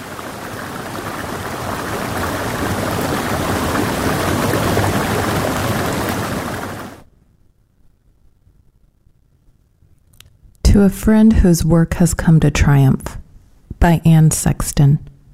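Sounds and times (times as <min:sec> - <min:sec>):
creek water flowing: 0:00.0 - 0:07.1
speech: 0:10.8 - 0:13.2, 0:13.8 - 0:15.1.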